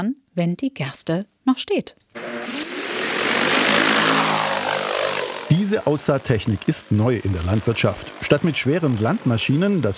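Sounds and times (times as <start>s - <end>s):
speech: 0.0s - 2.7s, 5.5s - 9.9s
agricultural drone flying over a field: 2.2s - 9.3s.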